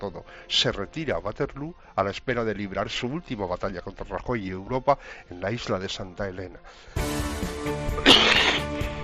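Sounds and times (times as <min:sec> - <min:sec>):
speech: 0:00.0 - 0:08.4
harsh explosive cough from a coughing fit: 0:07.9 - 0:08.9.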